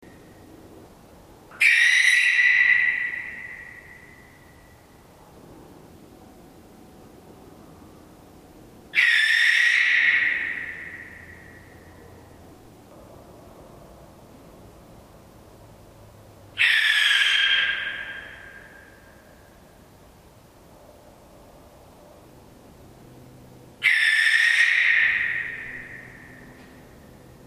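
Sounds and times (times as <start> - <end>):
owl shrieking: 1.5 - 4.3, 9.0 - 11.9, 16.6 - 19.1, 23.8 - 26.5.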